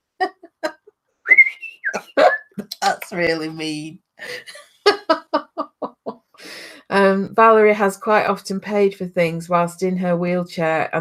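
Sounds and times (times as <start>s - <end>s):
person whistling: 1.3s - 2.6s
speech: 2.9s - 5.2s, 7.0s - 11.0s
laughter: 4.2s - 6.2s.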